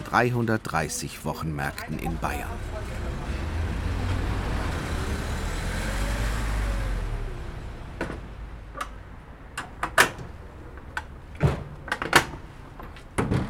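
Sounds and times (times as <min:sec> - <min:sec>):
speech: 0:00.1 - 0:02.8
car rumbling: 0:01.9 - 0:11.4.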